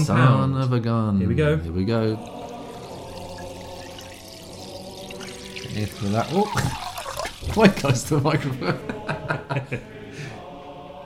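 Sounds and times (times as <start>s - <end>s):
speech: 0.0s - 2.5s, 5.8s - 10.0s
sparkling natural spring water pouring into a glass: 2.1s - 8.6s
laughter: 6.3s - 10.3s.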